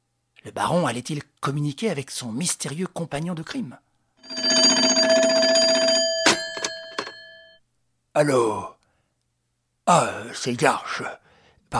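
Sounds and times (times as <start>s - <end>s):
speech: 0.4s - 3.9s, 8.2s - 8.8s, 9.9s - 11.7s
short clanging telephone bell bursts: 4.2s - 7.5s
telephone ringing with a bright metallic tone: 4.2s - 7.6s.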